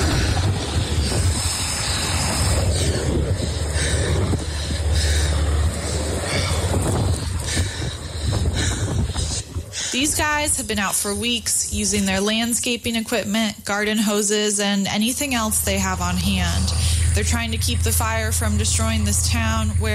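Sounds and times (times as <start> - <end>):
windy rushing: 0.0 - 12.6
helicopters thundering overhead over a wildfire: 0.0 - 19.9
speech: 10.4 - 19.9.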